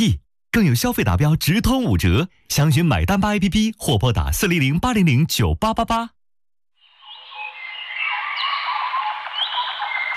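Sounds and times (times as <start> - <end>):
speech: 0.0 - 6.2
dense chorus of birdsong with chirps and trills: 6.8 - 10.1.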